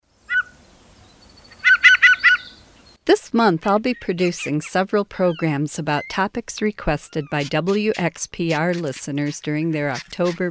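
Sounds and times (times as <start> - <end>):
Gray Jay calls: 0.3 - 0.6, 1.5 - 2.6, 7.0 - 10.4
speech: 3.1 - 10.4.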